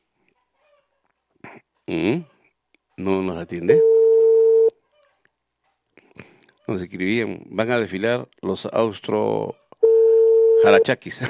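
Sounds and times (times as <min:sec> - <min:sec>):
speech: 0:01.5 - 0:02.3, 0:03.0 - 0:03.9, 0:06.7 - 0:09.6, 0:10.6 - 0:11.2
telephone keypad tone beeping: 0:03.8 - 0:04.7, 0:09.8 - 0:10.8.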